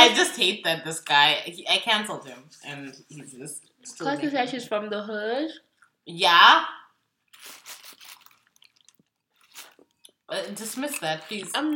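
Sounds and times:
speech: 0:00.0 - 0:06.8, 0:10.3 - 0:11.7
person slurping and swallowing water: 0:07.3 - 0:10.2.

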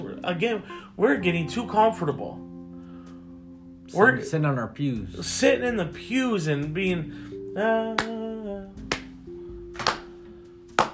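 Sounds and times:
speech: 0:00.2 - 0:02.5, 0:03.9 - 0:08.2
hands clapping: 0:08.0 - 0:08.2, 0:08.8 - 0:10.9.

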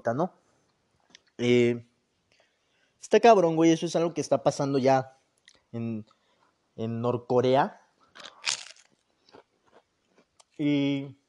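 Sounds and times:
speech: 0:00.0 - 0:00.4, 0:01.4 - 0:01.9, 0:03.0 - 0:06.2, 0:06.8 - 0:08.3, 0:10.6 - 0:11.2
crisp food being bitten and chewed: 0:08.1 - 0:10.6.

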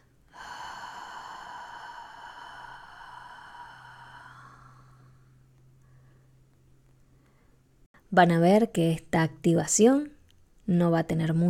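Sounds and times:
deep inhale and exhale during a guided relaxation exercise: 0:00.0 - 0:06.4, 0:07.1 - 0:07.7
speech: 0:08.1 - 0:11.4.

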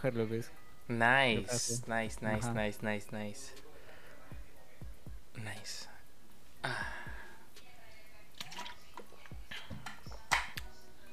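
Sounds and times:
speech: 0:00.0 - 0:03.7, 0:05.4 - 0:05.9, 0:06.6 - 0:07.2
close-miked wet water drips: 0:08.3 - 0:09.2.

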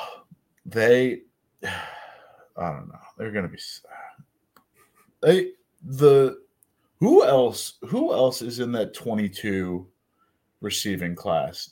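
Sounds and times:
speech: 0:00.7 - 0:01.9, 0:02.6 - 0:04.1, 0:05.2 - 0:06.4, 0:07.0 - 0:09.9, 0:10.6 - 0:11.7
person yawning: 0:01.6 - 0:02.2.

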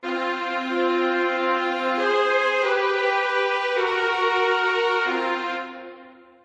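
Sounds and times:
band's second keyboard set to piano sound playing sustained chords: 0:00.0 - 0:06.2.

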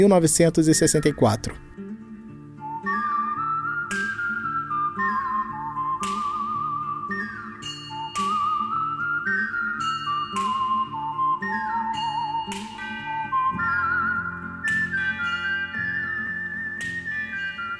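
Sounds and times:
speech: 0:00.0 - 0:01.8
whistled spaghetti western film theme melody with vibrato: 0:00.5 - 0:17.7.

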